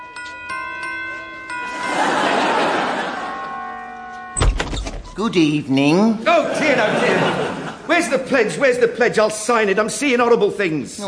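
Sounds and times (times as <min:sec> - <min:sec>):
doorbell at an embassy ringing with overlapping chime tones: 0:00.0 - 0:05.4
laughter: 0:01.5 - 0:04.0, 0:06.2 - 0:08.9
speech: 0:05.2 - 0:11.0.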